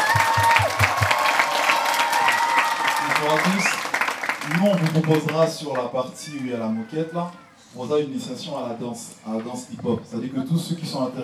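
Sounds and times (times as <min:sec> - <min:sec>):
audience applause at a rural dance event: 0:00.0 - 0:07.3
speech: 0:03.3 - 0:03.8, 0:04.5 - 0:11.2.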